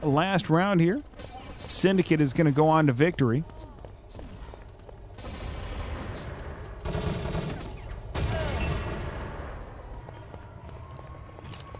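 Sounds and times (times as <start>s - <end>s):
speech: 0.0s - 3.6s
dense continuous gunfire in a video game: 1.0s - 3.1s, 4.0s - 10.1s
HK-69 grenade launcher firing in a video game: 5.2s - 9.6s.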